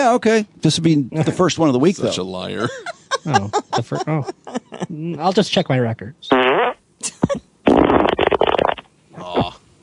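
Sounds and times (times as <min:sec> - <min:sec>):
speech: 0:00.0 - 0:06.4
laughter: 0:02.6 - 0:04.9
loud sputtering fart: 0:06.3 - 0:06.8, 0:07.6 - 0:09.6.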